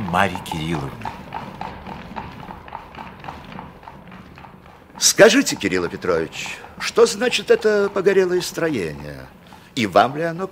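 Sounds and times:
horse hooves clip-clopping as a light open horse-drawn carriage sets off: 0.0 - 10.5
speech: 0.1 - 1.2, 5.0 - 10.5.

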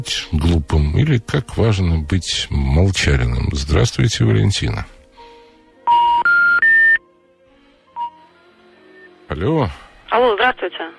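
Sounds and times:
speech: 0.0 - 5.0, 9.3 - 10.9
telephone line beeps: 5.9 - 7.0, 8.0 - 8.2.

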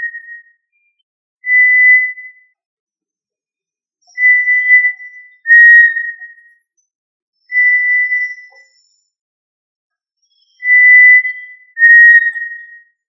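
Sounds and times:
tinamou calling with long pure even-pitched whistles: 0.0 - 0.5, 1.4 - 2.5, 4.1 - 6.6, 7.4 - 8.9, 10.2 - 13.0.

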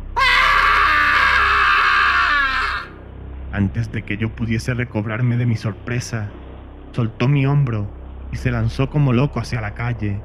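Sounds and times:
low drone: 0.0 - 10.2
old man's inhuman blood-curdling shriek: 0.2 - 3.0
speech: 3.6 - 6.4, 7.0 - 10.2.

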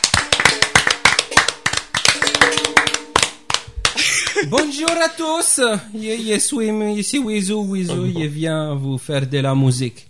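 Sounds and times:
audience applause at a music show: 0.0 - 5.1
laughter: 4.0 - 5.0, 7.9 - 8.2
speech: 4.4 - 10.0.

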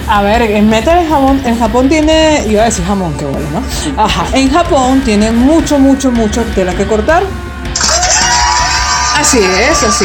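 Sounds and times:
speech: 0.1 - 7.8, 9.2 - 10.0
crowd shouting and cheering: 7.8 - 10.0.

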